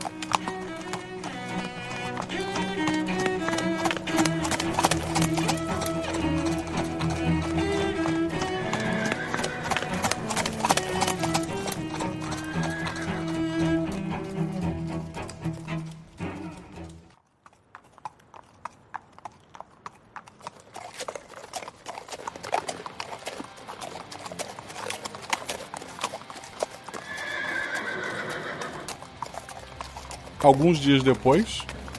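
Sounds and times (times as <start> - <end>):
horse whinnying shrilly: 0.0 - 14.9, 26.9 - 29.3
horses galloping hoofbeats: 0.0 - 31.9
speech: 30.5 - 31.7.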